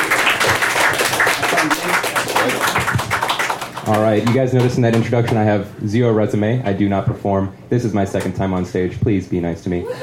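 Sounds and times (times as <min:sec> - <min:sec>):
audience applauding: 0:00.0 - 0:05.0
speech: 0:03.9 - 0:10.0.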